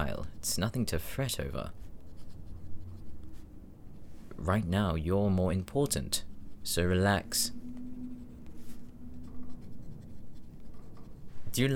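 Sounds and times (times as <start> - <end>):
speech: 0.0 - 1.9, 4.4 - 7.6, 11.6 - 11.7
pen or pencil scratching on paper while writing by hand: 1.8 - 3.5, 8.1 - 11.3.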